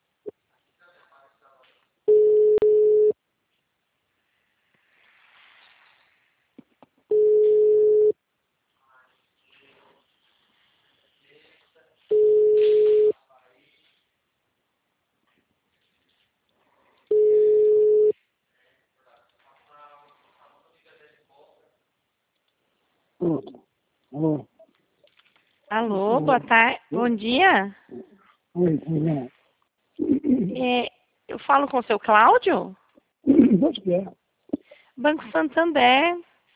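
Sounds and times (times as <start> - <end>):
telephone busy signal: 2.1 - 3.2, 7.1 - 8.1, 12.1 - 13.1, 17.1 - 18.1
speech: 23.2 - 23.6, 24.2 - 24.5, 25.7 - 29.4, 30.0 - 34.2, 35.0 - 36.3.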